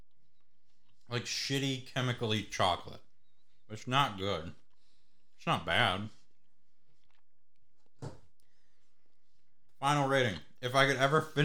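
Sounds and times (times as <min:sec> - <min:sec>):
speech: 0:01.1 - 0:03.0, 0:03.7 - 0:04.6, 0:05.4 - 0:06.2, 0:09.8 - 0:11.4
person chewing a chewy chocolate treat: 0:06.5 - 0:08.5.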